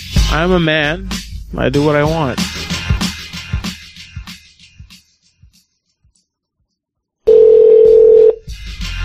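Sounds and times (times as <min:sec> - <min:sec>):
speech: 0:00.3 - 0:02.6
loud steady single-pitched telephone line tone: 0:07.3 - 0:08.4.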